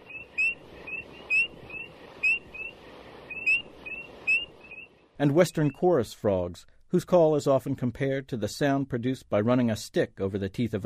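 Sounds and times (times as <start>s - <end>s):
spring peeper peeps: 0.0s - 4.9s, 5.5s - 5.9s
speech: 5.2s - 10.8s.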